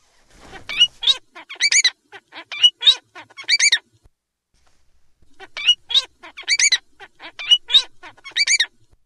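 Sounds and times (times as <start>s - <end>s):
Bengalese finch song: 0.4s - 3.9s, 5.2s - 9.0s.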